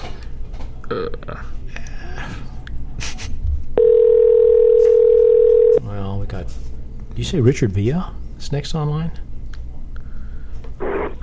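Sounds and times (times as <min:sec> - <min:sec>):
speech: 0:00.9 - 0:01.6, 0:05.9 - 0:06.6, 0:07.2 - 0:09.3
ringback tone of an outgoing telephone call: 0:03.8 - 0:05.8
breathing: 0:09.9 - 0:10.7.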